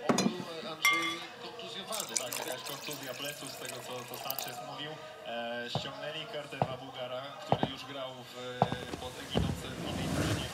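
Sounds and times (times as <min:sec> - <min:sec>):
glasses clinking: 0:00.1 - 0:04.6
red wine pouring into glasses: 0:01.8 - 0:04.8
speech: 0:02.9 - 0:10.4.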